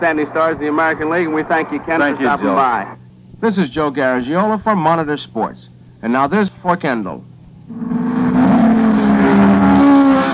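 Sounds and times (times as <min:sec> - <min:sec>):
high-performance muscle-car engines roaring: 0:00.0 - 0:02.9, 0:07.7 - 0:10.3
speech: 0:00.0 - 0:08.0.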